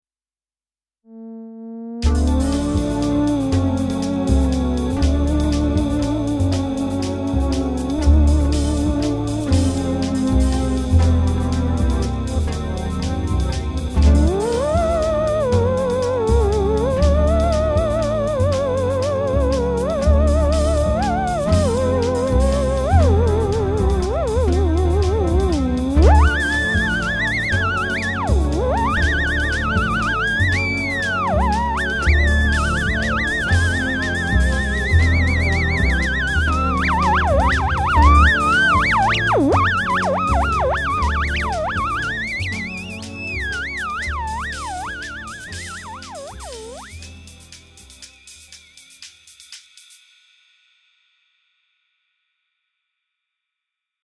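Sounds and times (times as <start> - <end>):
theremin: 1.1 - 47.6.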